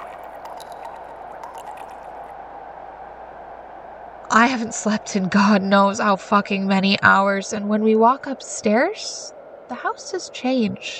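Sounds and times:
liquid trickling: 0:00.0 - 0:02.4
light liquid drips: 0:00.0 - 0:03.3
speech: 0:04.3 - 0:10.9.

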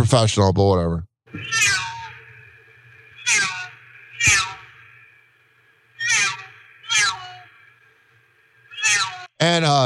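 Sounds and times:
speech: 0:00.1 - 0:01.8, 0:03.3 - 0:03.5, 0:09.4 - 0:09.8
faint steady hum: 0:01.3 - 0:09.8
cat meowing: 0:01.4 - 0:02.2, 0:03.2 - 0:04.7, 0:06.0 - 0:07.5, 0:08.7 - 0:09.3.

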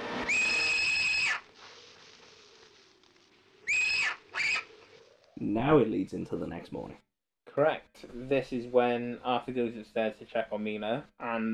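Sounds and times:
owl screeching: 0:00.2 - 0:01.8, 0:03.6 - 0:05.3
speech: 0:05.4 - 0:11.5.

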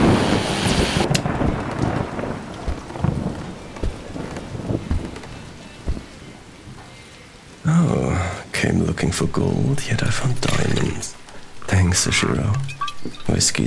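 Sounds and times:
low thunder rumbling: 0:00.0 - 0:06.8
heavy rain from a cold front in the greater Boston area: 0:00.0 - 0:13.6
speech: 0:09.0 - 0:11.2, 0:11.8 - 0:13.6.

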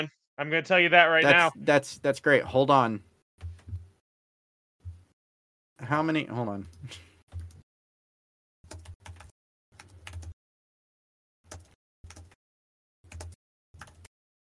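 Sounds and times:
speech: 0:00.0 - 0:03.1, 0:05.8 - 0:07.1
forceful angry typing on a computer keyboard: 0:08.7 - 0:10.4, 0:11.5 - 0:12.4, 0:13.1 - 0:14.1.

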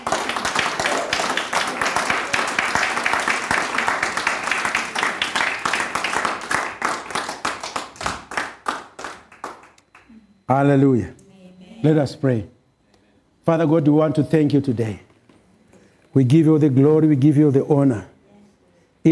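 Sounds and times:
audience clapping hands: 0:00.0 - 0:10.1
speech: 0:10.5 - 0:11.2, 0:11.8 - 0:12.6, 0:13.5 - 0:15.1, 0:16.2 - 0:18.1.

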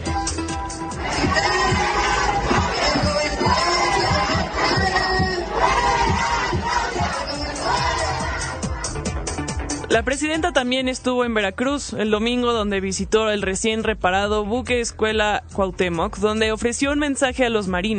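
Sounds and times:
large crowd of protesting teachers shouting and chanting: 0:00.0 - 0:09.4
regular pulsing beats: 0:00.0 - 0:09.9
speech: 0:10.0 - 0:17.9.

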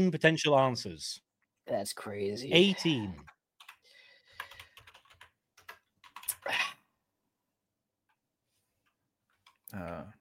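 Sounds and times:
speech: 0:00.0 - 0:03.4, 0:09.7 - 0:10.1
several people typing on computer keyboards: 0:03.2 - 0:06.6.

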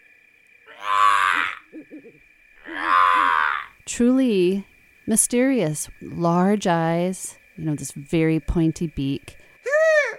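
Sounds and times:
screech owl screeching: 0:00.7 - 0:03.8
speech: 0:04.0 - 0:09.4.

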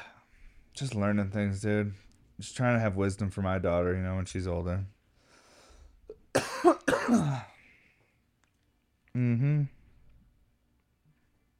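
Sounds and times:
speech: 0:00.8 - 0:05.0, 0:06.6 - 0:07.5
harsh coughing: 0:06.3 - 0:07.6.

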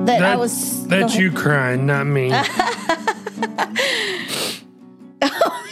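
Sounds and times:
speech: 0:00.2 - 0:03.8
laughter: 0:02.2 - 0:04.2, 0:05.2 - 0:05.7
nasal sniffles: 0:04.0 - 0:04.7.

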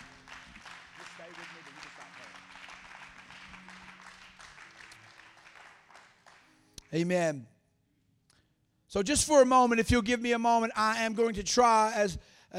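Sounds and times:
audience clapping hands in applause: 0:00.0 - 0:06.6
speech: 0:06.9 - 0:07.5, 0:08.9 - 0:12.5.

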